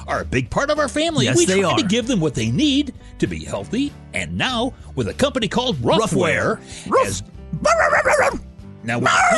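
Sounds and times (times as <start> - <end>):
speech: 0.1 - 9.3
dog barking yowl: 7.6 - 8.4, 9.0 - 9.3.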